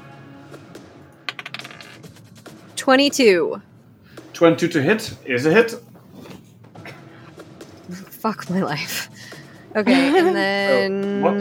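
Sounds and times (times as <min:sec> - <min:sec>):
physical dice rolling on a tabletop: 0:01.3 - 0:02.4
speech: 0:02.8 - 0:03.7, 0:04.4 - 0:05.9, 0:08.2 - 0:09.1, 0:09.8 - 0:11.4
laughter: 0:09.8 - 0:10.7.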